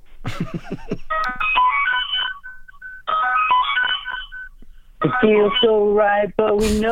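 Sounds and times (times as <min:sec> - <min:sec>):
laughter: 0:00.3 - 0:01.1
speech: 0:00.3 - 0:01.7, 0:05.0 - 0:06.9
bright melodic phone ringtone played as instrumentation in a song: 0:01.1 - 0:05.7.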